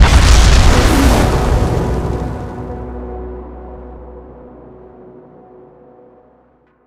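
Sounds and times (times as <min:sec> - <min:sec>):
fire burning: 0:00.0 - 0:02.8
explosion at boss spawn: 0:00.0 - 0:02.9.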